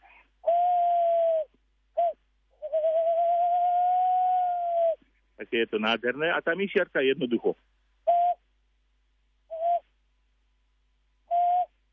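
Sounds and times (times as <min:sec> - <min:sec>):
tawny owl hooting: 0:00.0 - 0:05.0, 0:08.1 - 0:08.4, 0:09.5 - 0:09.9, 0:11.3 - 0:11.8
speech: 0:05.4 - 0:07.7.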